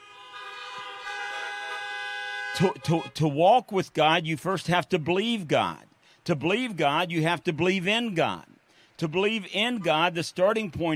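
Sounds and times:
car horns honking together during a church sermon: 0.0s - 3.3s
speech: 2.6s - 10.9s.

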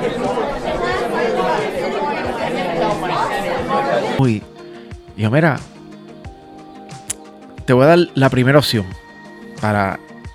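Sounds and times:
many people talking at once: 0.0s - 4.2s
speech: 4.2s - 4.5s, 5.2s - 5.7s, 7.7s - 9.0s, 9.6s - 10.1s.

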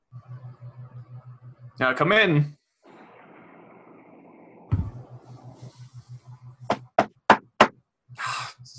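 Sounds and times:
low steadily pulsing hum: 0.0s - 8.7s
speech: 1.8s - 2.6s
sharp loud knocks on a front door: 6.7s - 7.8s.

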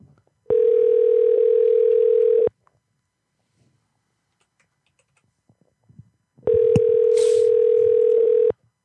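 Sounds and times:
telephone dial tone while placing a call: 0.5s - 2.5s, 6.5s - 8.5s.

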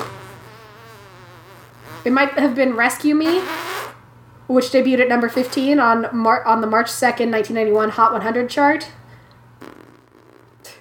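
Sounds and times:
buzzy fart noises blown with the mouth: 0.0s - 4.0s, 5.2s - 5.8s, 9.6s - 10.7s
steady low hum: 0.0s - 10.7s
speech: 2.0s - 3.6s, 4.5s - 9.0s.

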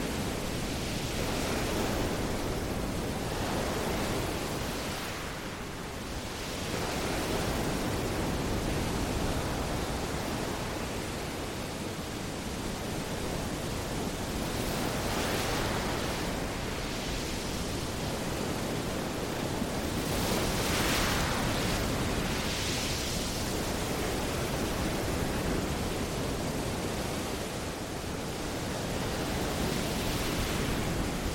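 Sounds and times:
Pacific Ocean waves roaring: 0.0s - 31.3s.

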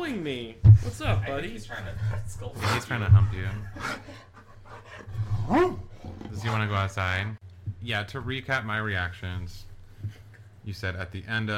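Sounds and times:
speech: 0.0s - 4.3s, 5.5s - 11.5s
dog giving a deep low bark: 5.4s - 6.7s.

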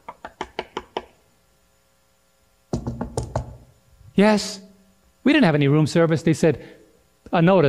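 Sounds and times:
knocking on a hotel room door: 2.7s - 3.7s
speech: 4.2s - 4.6s, 5.3s - 7.6s.

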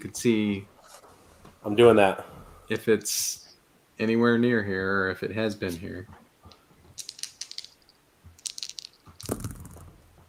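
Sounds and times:
speech: 0.0s - 0.7s, 1.6s - 3.4s, 4.0s - 6.2s
dice clattering and rattling across a hard table surface: 7.0s - 10.0s.

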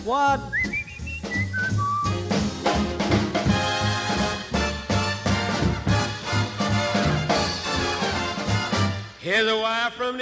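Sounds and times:
speech: 0.0s - 0.7s, 9.3s - 10.2s
person whistling a bright birdlike melody of quick sliding notes: 0.4s - 2.2s
loud lively brassy dance band playing: 0.9s - 9.2s.

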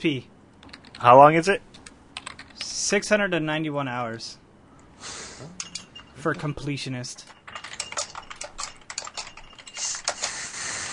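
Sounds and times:
speech: 0.0s - 0.4s, 1.0s - 1.7s, 2.8s - 4.4s, 5.0s - 5.6s, 6.2s - 7.3s
loud typing on a computer keyboard: 0.6s - 1.0s, 2.2s - 2.7s, 7.5s - 10.4s.

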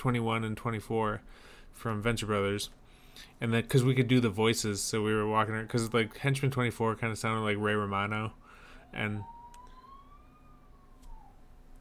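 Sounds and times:
speech: 0.0s - 9.4s
steady noise: 0.0s - 11.7s
police car siren wailing faintly: 5.0s - 11.7s.

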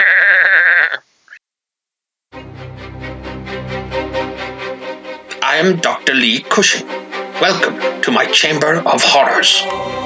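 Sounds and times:
goat bleating loudly: 0.0s - 1.0s
dense rhythmic music-like sound: 2.4s - 10.0s
speech: 5.6s - 10.0s.

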